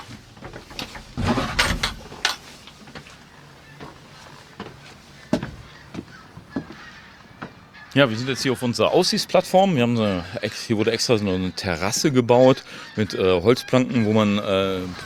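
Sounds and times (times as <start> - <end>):
door creaking and rattling as it opens: 0.0 - 6.7, 14.7 - 15.0
room noise: 0.0 - 6.7
faint footsteps: 0.0 - 7.9
scattered clicks and knocks: 0.4 - 3.1
speech: 8.0 - 15.0.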